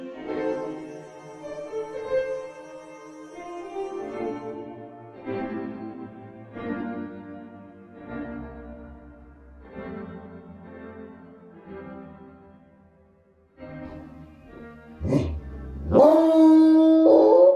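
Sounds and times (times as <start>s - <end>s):
pack of tracking dogs howling: 15.0s - 17.5s.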